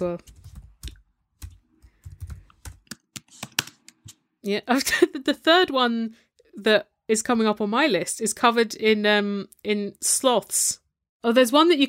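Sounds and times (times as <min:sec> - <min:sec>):
speech: 0:00.0 - 0:00.4, 0:04.4 - 0:11.8
typing on a computer keyboard: 0:00.2 - 0:04.0.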